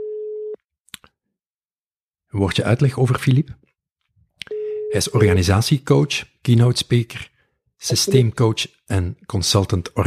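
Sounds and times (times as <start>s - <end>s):
telephone ringing tone while placing a call: 0.0s - 0.6s, 4.5s - 5.0s
speech: 2.3s - 3.7s, 4.9s - 10.0s.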